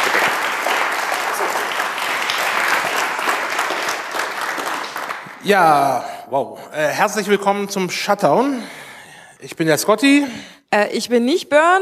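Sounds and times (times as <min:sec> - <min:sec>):
audience applause welcoming a speaker at a conference: 0:00.0 - 0:05.7
speech: 0:05.4 - 0:08.8, 0:09.4 - 0:11.8.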